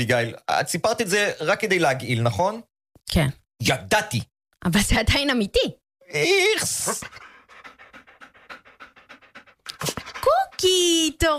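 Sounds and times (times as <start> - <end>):
speech: 0.0 - 7.3, 10.2 - 11.3
dog panting: 6.6 - 11.3.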